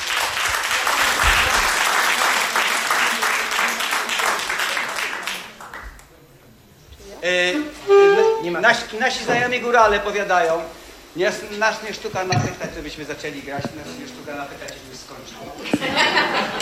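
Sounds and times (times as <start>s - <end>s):
audience applause after a live radio concert encore: 0.0s - 6.2s, 16.0s - 16.5s
speech: 7.3s - 7.7s, 8.4s - 16.5s
laughter: 15.6s - 16.5s.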